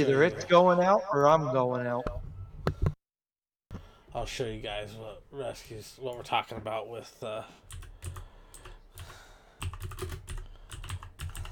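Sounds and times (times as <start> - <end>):
speech: 0.0 - 2.2, 4.2 - 7.8
fingers typing on a computer keyboard: 7.7 - 11.5.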